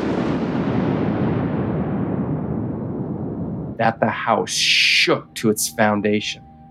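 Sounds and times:
loud clap of thunder: 0:00.0 - 0:04.1
speech: 0:03.8 - 0:06.5.

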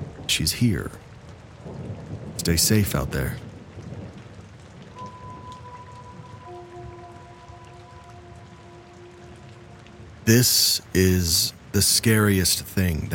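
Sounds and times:
low rumble of thunder: 0:00.0 - 0:11.0
steady rain pouring: 0:00.0 - 0:13.1
speech: 0:00.3 - 0:01.1, 0:02.4 - 0:03.5, 0:10.3 - 0:13.1
faint sustained eerie tones: 0:04.9 - 0:11.0.

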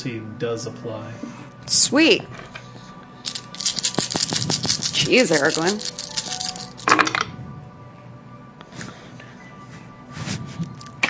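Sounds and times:
speech: 0:00.0 - 0:02.6, 0:04.4 - 0:06.0
dice tumbling and clattering across a table: 0:03.3 - 0:07.3.

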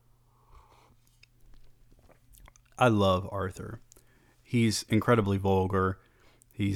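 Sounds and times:
person slurping tea: 0:00.4 - 0:02.8
person gulping: 0:00.6 - 0:02.8
wet mouth clicks: 0:00.7 - 0:02.8
speech: 0:02.8 - 0:03.9, 0:04.5 - 0:06.7.

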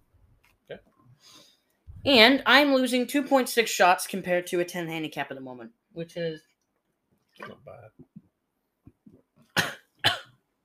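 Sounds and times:
speech: 0:00.7 - 0:06.5, 0:07.4 - 0:08.1
person coughing after inhaling a drink of Irn-Bru: 0:09.6 - 0:10.3.

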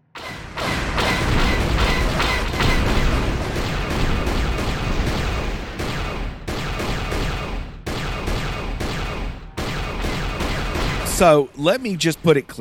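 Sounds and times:
booming impacts in video game space combat: 0:00.0 - 0:12.5
video game turret gunfire in a space combat section: 0:00.2 - 0:12.5
speech: 0:11.2 - 0:12.5.

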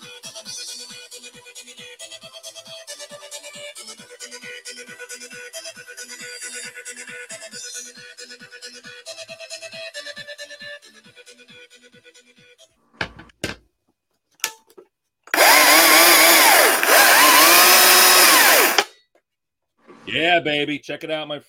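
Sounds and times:
chainsaw sputtering, idling and cutting wood for carving: 0:15.3 - 0:18.9
speech: 0:20.1 - 0:21.4.

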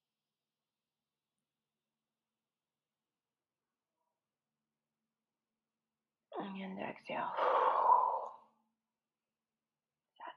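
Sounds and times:
speech: 0:06.4 - 0:07.9
deep breath exhaled as a sigh during a meditative breathing exercise: 0:07.3 - 0:08.4.

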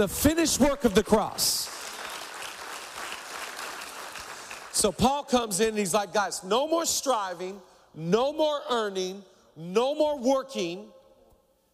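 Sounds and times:
speech: 0:00.0 - 0:01.7, 0:04.8 - 0:11.0
audience clapping: 0:01.1 - 0:05.1.

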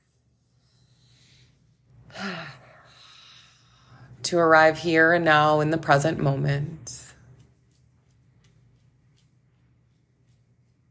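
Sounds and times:
deep breath: 0:00.2 - 0:04.2
speech: 0:04.3 - 0:06.9.

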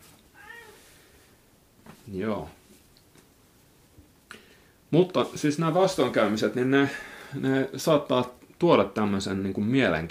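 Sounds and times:
faint hiss: 0:00.0 - 0:10.0
cat meowing: 0:00.4 - 0:00.8
speech: 0:02.1 - 0:02.6, 0:04.9 - 0:10.0.

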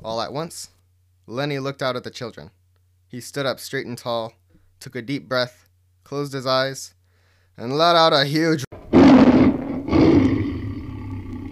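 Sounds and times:
speech: 0:00.0 - 0:07.0, 0:07.6 - 0:08.7
lion roaring: 0:08.8 - 0:11.4.

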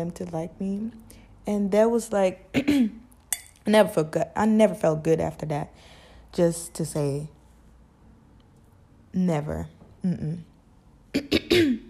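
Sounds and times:
speech: 0:00.0 - 0:03.0, 0:03.6 - 0:07.4, 0:09.2 - 0:10.5, 0:11.1 - 0:11.8
person clearing throat: 0:11.1 - 0:11.8.

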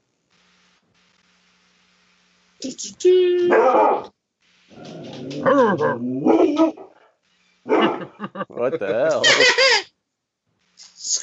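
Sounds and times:
speech: 0:02.6 - 0:04.1, 0:05.4 - 0:06.8, 0:07.6 - 0:09.8
big dog barking in warbling howl-like bursts: 0:03.5 - 0:04.1, 0:04.8 - 0:07.0, 0:07.7 - 0:08.2
laughter: 0:07.7 - 0:09.8.

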